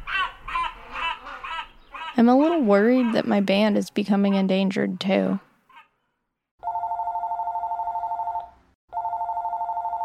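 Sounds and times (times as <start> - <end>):
speech: 2.2 - 5.5
telephone ringing: 6.6 - 10.0.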